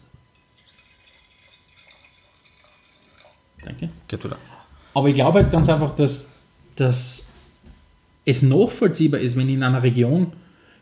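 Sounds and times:
mixed drink pouring into a glass: 0:00.3 - 0:03.4
speech: 0:03.6 - 0:07.3, 0:08.2 - 0:10.4.

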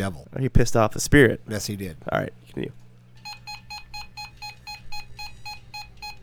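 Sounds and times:
speech: 0:00.0 - 0:02.8
low hum: 0:00.0 - 0:06.2
electronic detector beeping: 0:03.2 - 0:06.2.

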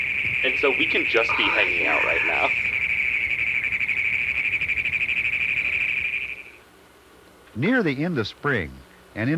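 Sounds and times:
frog calling in rapid chugging pulses: 0:00.0 - 0:06.6
speech: 0:00.6 - 0:02.8, 0:07.6 - 0:09.3.

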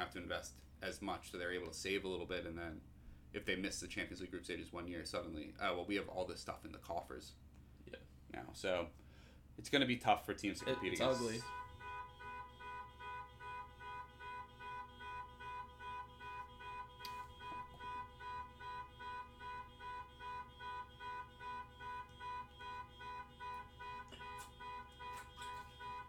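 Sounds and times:
speech: 0:00.0 - 0:09.0, 0:09.6 - 0:11.6
car horn or alarm pulsing outside: 0:10.6 - 0:26.0.

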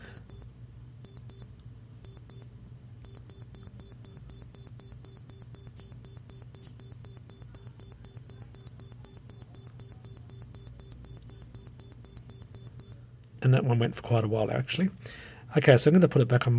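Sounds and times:
digital alarm clock beeping in sharp high-pitched bursts: 0:00.0 - 0:02.4, 0:03.0 - 0:13.0
low hum: 0:00.0 - 0:16.5
speech: 0:13.4 - 0:16.5.

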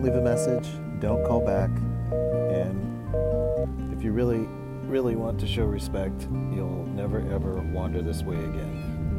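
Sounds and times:
seagull calling on a beach: 0:00.0 - 0:02.6
speech: 0:00.0 - 0:09.0.

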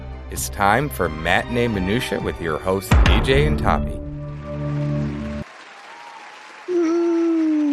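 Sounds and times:
speech: 0:00.3 - 0:04.0
crowd applause: 0:04.4 - 0:07.7.

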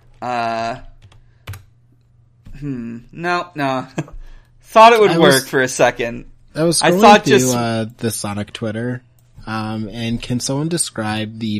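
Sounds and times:
speech: 0:00.2 - 0:00.9, 0:02.6 - 0:11.5
computer keyboard keystrokes: 0:01.0 - 0:01.7.

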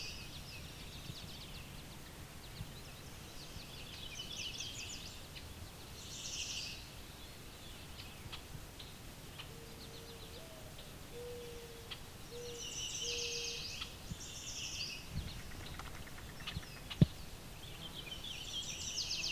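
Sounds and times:
scattered bird chirps: 0:00.0 - 0:19.3
mourning dove cooing: 0:09.5 - 0:12.6.

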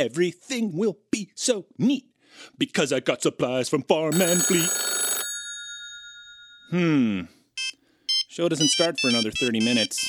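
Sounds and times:
speech: 0:00.0 - 0:05.0, 0:06.7 - 0:07.4, 0:08.4 - 0:10.0
telephone ringing: 0:04.1 - 0:06.8, 0:07.6 - 0:10.0.

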